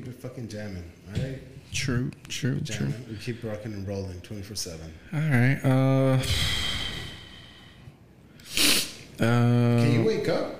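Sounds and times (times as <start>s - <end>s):
speech: 0.1s - 6.8s, 9.2s - 10.5s
sniffling: 6.2s - 9.2s
nasal snorty breathing: 8.4s - 9.1s.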